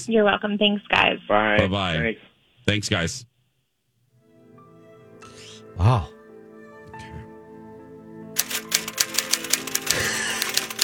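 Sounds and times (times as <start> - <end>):
speech: 0.0 - 3.3, 5.8 - 6.2
typing on a keyboard: 8.4 - 10.8.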